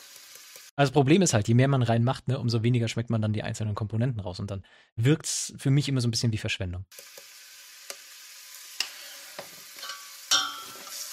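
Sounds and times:
food sizzling while frying in a pan: 0.0s - 0.7s, 6.9s - 11.1s
speech: 0.8s - 7.3s.

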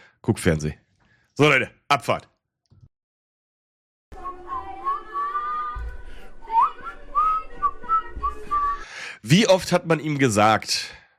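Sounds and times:
speech: 0.2s - 0.8s, 1.4s - 2.3s, 9.2s - 11.0s
person whistling a wavering melody into a microphone: 6.5s - 9.0s.

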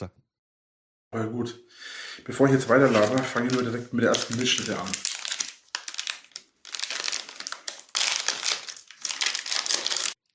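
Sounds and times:
speech: 1.1s - 5.1s
snack bar wrapper packaging crinkling while handled: 2.8s - 10.3s.

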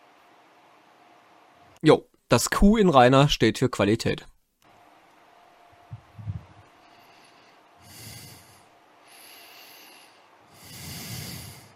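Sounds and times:
speech: 1.8s - 4.3s
soft thumps: 5.9s - 6.6s
heavy snorting breaths: 6.8s - 11.7s.

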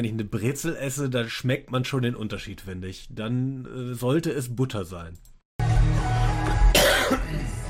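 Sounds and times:
speech: 0.0s - 5.3s
person coughing: 6.7s - 7.6s.

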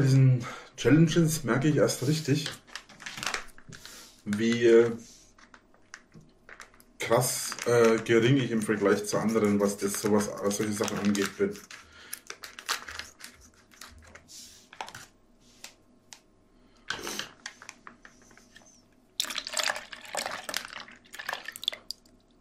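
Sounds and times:
speech: 0.0s - 2.6s, 4.2s - 5.1s, 7.0s - 11.8s
water splashing and trickling as it is poured off: 19.2s - 22.1s.

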